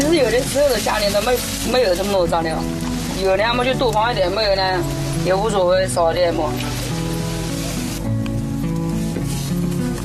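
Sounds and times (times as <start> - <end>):
dough sizzling on a hot wok edge heated by a wood fire: 0.0 - 10.0
speech: 0.2 - 6.8.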